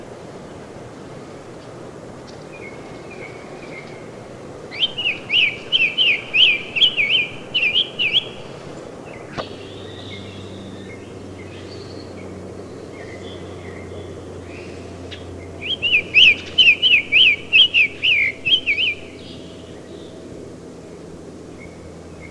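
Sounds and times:
Summer Tanager song of short whistled rising-and-falling notes: 0:04.7 - 0:20.2, 0:21.5 - 0:22.2.

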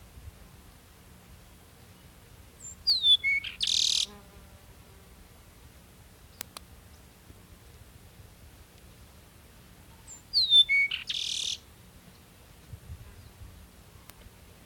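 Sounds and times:
Peruvian meadowlark Sturnella bellicosa song: 0:00.0 - 0:04.1, 0:08.4 - 0:14.6.

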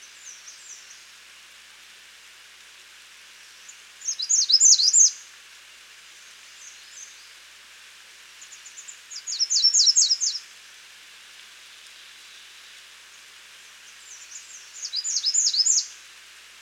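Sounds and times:
steady background hiss: 0:00.0 - 0:16.5
American redstart Setophaga ruticilla singing: 0:03.6 - 0:05.2, 0:08.4 - 0:10.4, 0:13.8 - 0:16.0.

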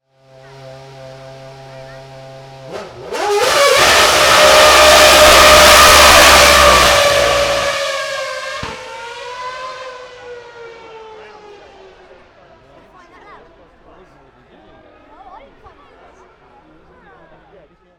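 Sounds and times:
McLaren-Mercedes MP4 23 racing car: 0:00.0 - 0:17.9.

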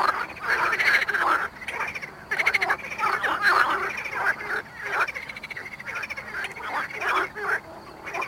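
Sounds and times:
Pelophylax ridibundus marsh frogs croaking at Mali lag, Botevgrad, Bulgaria: 0:00.0 - 0:08.2.

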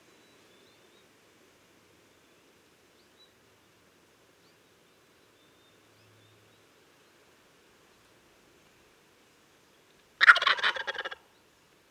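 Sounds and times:
Wild turkey gobble: 0:10.2 - 0:11.2.

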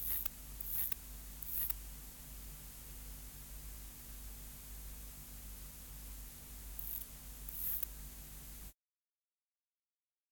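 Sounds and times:
Conocephalus longipennis stridulation: 0:00.0 - 0:01.7, 0:06.8 - 0:07.9
steady low electrical hum and hiss: 0:00.0 - 0:08.8.

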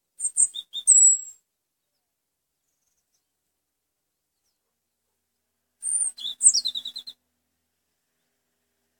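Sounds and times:
European robin singing, Erithacus rubecula marionae: 0:00.2 - 0:02.0, 0:05.8 - 0:07.2.

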